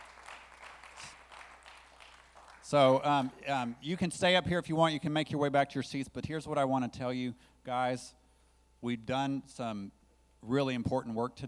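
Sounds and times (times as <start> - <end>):
audience clapping: 0.0 - 3.8
speech: 2.7 - 8.2, 8.8 - 11.4.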